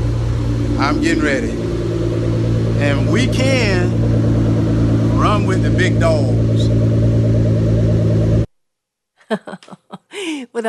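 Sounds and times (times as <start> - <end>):
car engine revving: 0.0 - 8.5
speech: 0.8 - 1.6, 2.8 - 4.3, 5.2 - 6.8, 9.3 - 10.6.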